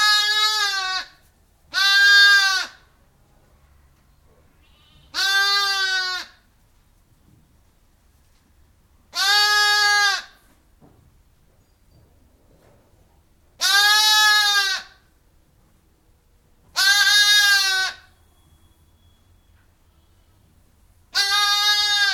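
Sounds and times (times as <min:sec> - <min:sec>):
sheep bleating inside a barn: 0:00.0 - 0:01.1, 0:04.6 - 0:06.4, 0:09.2 - 0:10.4, 0:13.6 - 0:15.0, 0:16.8 - 0:18.1, 0:21.1 - 0:22.1
ewe bleating from outside: 0:00.0 - 0:03.0, 0:04.5 - 0:06.5, 0:09.1 - 0:10.5, 0:13.6 - 0:15.2, 0:16.6 - 0:18.6, 0:21.0 - 0:22.1.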